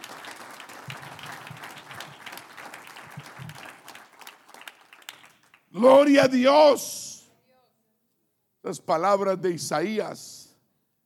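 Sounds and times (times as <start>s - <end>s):
crowd clapping: 0.0s - 6.1s
speech: 5.8s - 7.0s, 8.7s - 10.4s.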